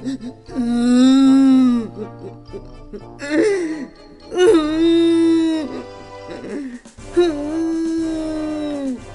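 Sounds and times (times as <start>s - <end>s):
person crying and whimpering voicing a meat grinder in a story: 0.0s - 9.0s
soft sustained music: 0.0s - 9.1s.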